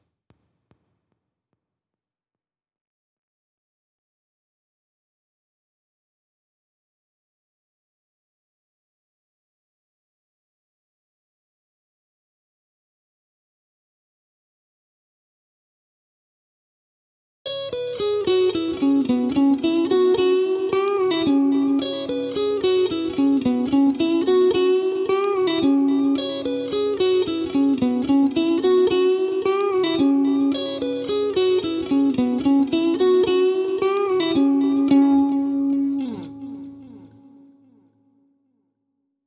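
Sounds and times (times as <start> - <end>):
lead guitar in E major at 110 BPM: 17.5 - 37.9.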